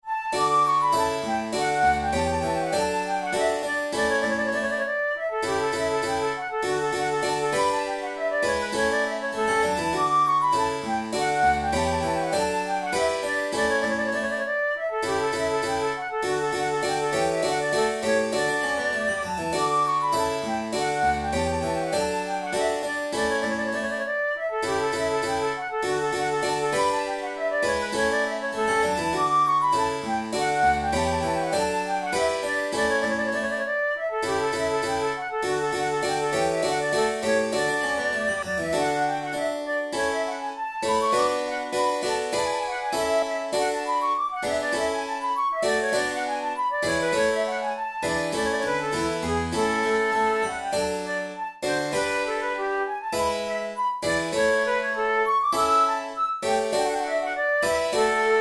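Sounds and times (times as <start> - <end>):
flute sonata in D major allegro: 0.0 - 58.4.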